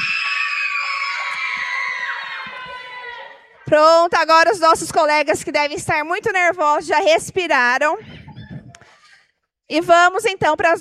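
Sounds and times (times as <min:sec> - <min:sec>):
large group of students shouting their school cheer: 0:00.0 - 0:03.6
speech: 0:03.7 - 0:08.2, 0:09.7 - 0:10.8.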